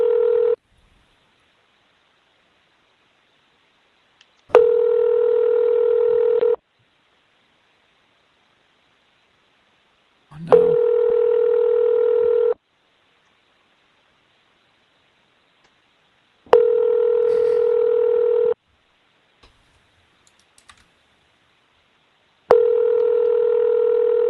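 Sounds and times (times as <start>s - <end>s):
telephone ringback tone of an unanswered call: 0.0s - 0.6s, 4.5s - 6.6s, 10.5s - 12.6s, 16.5s - 18.6s, 22.5s - 24.2s
faint clicks: 20.2s - 20.9s.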